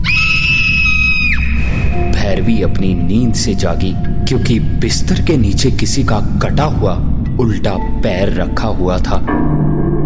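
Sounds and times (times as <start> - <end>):
woman screaming loudly in fright: 0.0 - 1.5
low rumbling background: 0.8 - 10.0
speech: 2.3 - 10.0.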